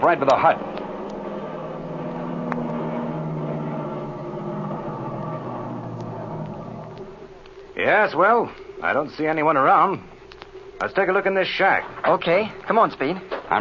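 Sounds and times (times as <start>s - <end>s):
speech: 0.0s - 0.8s, 7.9s - 10.1s, 10.8s - 13.5s
airplane engine turning over and running: 0.0s - 13.4s.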